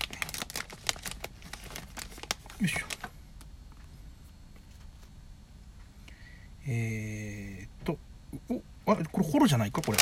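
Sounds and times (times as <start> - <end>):
sticker snack wrapper being torn open, crinkling: 0.0 - 3.5, 9.7 - 10.0
speech: 2.6 - 3.0, 6.7 - 10.0.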